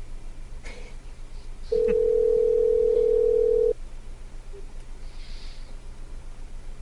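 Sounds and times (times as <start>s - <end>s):
faint hum: 0.0s - 6.8s
electronic ringback tone of an outgoing phone call: 1.7s - 3.8s.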